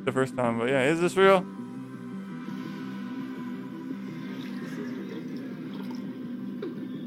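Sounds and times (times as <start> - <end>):
speech: 0.0 - 1.6
drink being poured, trickling and dripping: 4.3 - 6.8.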